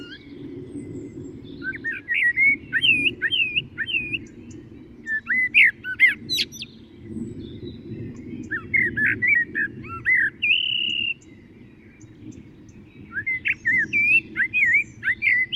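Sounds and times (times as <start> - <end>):
Common blackbird Turdus merula song of fluted whistles: 0.0 - 15.5.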